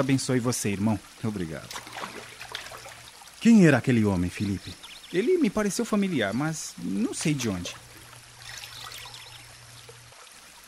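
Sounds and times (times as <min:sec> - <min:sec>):
speech: 0:00.0 - 0:02.1, 0:03.4 - 0:07.8
water flowing and pouring at a baptism: 0:00.0 - 0:10.6
low hum: 0:04.4 - 0:10.4.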